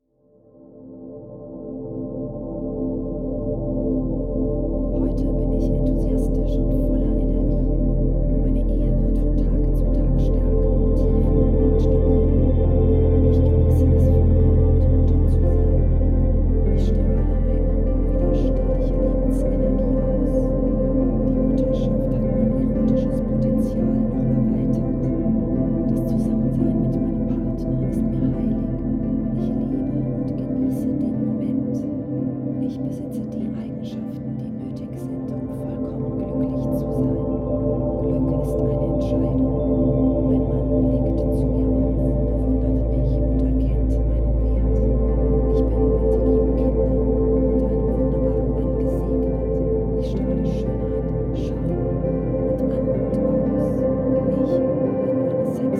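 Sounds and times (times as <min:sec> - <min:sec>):
meditative music: 0:00.0 - 0:55.7.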